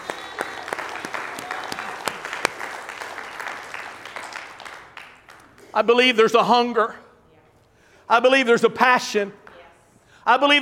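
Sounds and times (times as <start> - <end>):
roomful of people clapping in praise: 0.0 - 5.9
speech: 5.8 - 7.0, 8.1 - 9.4, 10.3 - 10.6.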